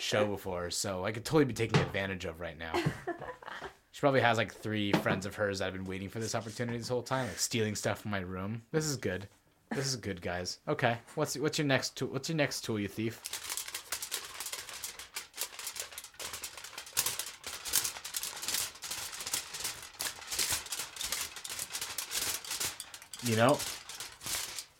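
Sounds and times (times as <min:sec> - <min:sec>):
speech: 0:00.0 - 0:13.5, 0:23.3 - 0:23.8
tinfoil being crinkled: 0:13.0 - 0:24.7.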